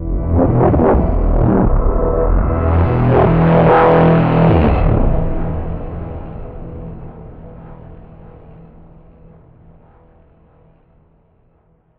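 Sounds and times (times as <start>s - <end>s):
warp approach effect: 0.0s - 8.0s.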